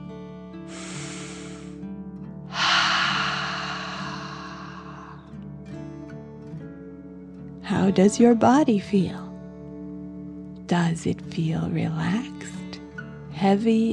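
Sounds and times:
soft sustained music during a guided relaxation exercise: 0.0s - 13.9s
deep breath in through the nose and out through the mouth: 0.7s - 1.8s, 2.5s - 5.4s
speech: 7.7s - 9.2s, 10.7s - 12.6s, 13.4s - 13.9s.

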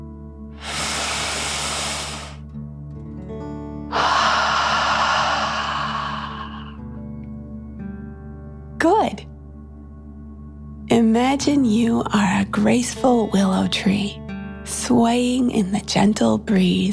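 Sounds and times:
long airy inhale: 0.6s - 2.4s, 3.9s - 6.8s
speech: 11.1s - 14.2s, 14.8s - 16.9s.

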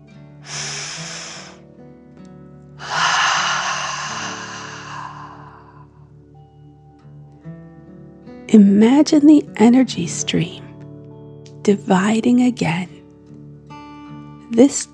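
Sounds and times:
person breathing deeply in and out during a guided breathing exercise: 0.4s - 1.6s, 2.8s - 6.1s
speech: 8.5s - 10.6s, 11.6s - 13.0s, 14.5s - 14.9s.

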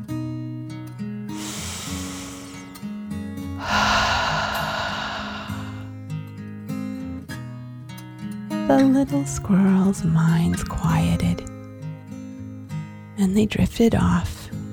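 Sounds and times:
slow deep breath in and out: 1.4s - 3.0s, 3.6s - 6.0s
speech: 8.7s - 11.5s, 13.2s - 14.4s.

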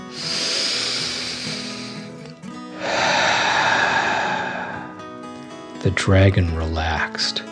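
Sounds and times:
deep breath drawn in and let out: 0.0s - 5.6s
speech: 5.8s - 7.4s.

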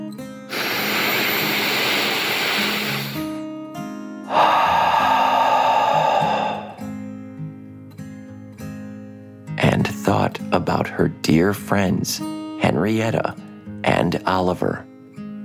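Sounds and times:
deep breath in and out: 0.5s - 3.4s, 4.3s - 7.0s
speech: 10.6s - 14.9s.

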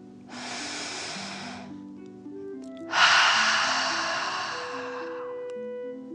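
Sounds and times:
calm music with sustained tones: 0.0s - 6.1s
deep breaths in and out: 0.3s - 1.7s, 2.9s - 5.5s.

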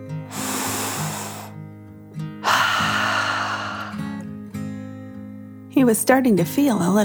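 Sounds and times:
deep breath in and out: 0.2s - 1.6s, 2.4s - 4.2s
speech: 5.8s - 7.0s.

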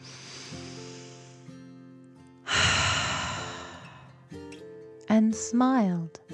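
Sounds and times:
deep calming breath in and out as relaxation exercise: 0.0s - 1.8s, 2.5s - 4.3s
faint sustained music: 0.0s - 6.3s
speech: 5.2s - 6.3s.

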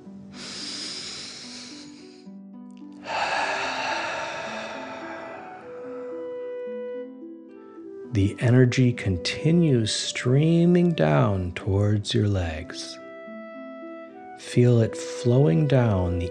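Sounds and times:
soft sustained music tones: 0.0s - 16.3s
forceful exhale through mouth: 0.3s - 2.2s, 3.0s - 6.5s
deep breath in through nose: 0.3s - 2.3s, 3.0s - 6.6s
speech: 8.2s - 13.0s, 14.5s - 16.3s.

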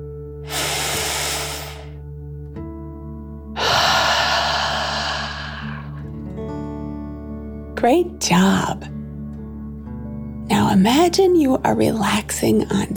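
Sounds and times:
soft sustained music: 0.0s - 1.3s, 1.9s - 12.9s
deep breath in, then out through the mouth: 0.4s - 2.0s, 3.6s - 6.2s
speech: 7.8s - 9.0s, 10.6s - 12.9s.

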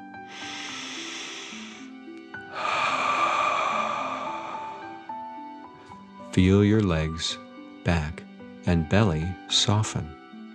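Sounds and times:
soft slow musical backing: 0.0s - 10.5s
deep inhale through the nose: 0.2s - 5.9s
speech: 6.4s - 10.2s.

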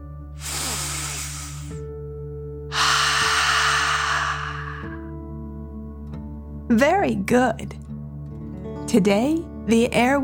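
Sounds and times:
deep breath in and out: 0.4s - 1.8s, 2.7s - 5.1s
speech: 6.7s - 7.8s, 8.9s - 10.2s.

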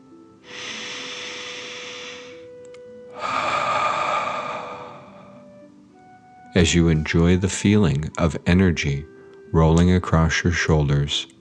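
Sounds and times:
deep breath in and out during a relaxation exercise: 0.4s - 2.5s, 3.1s - 5.6s
speech: 6.6s - 11.3s.

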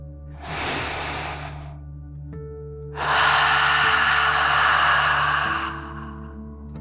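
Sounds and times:
airy breath in and out: 0.3s - 1.9s, 3.0s - 6.6s.

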